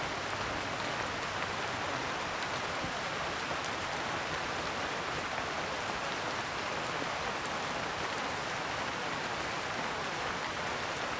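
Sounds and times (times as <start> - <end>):
heavy rain: 0.0 - 11.1.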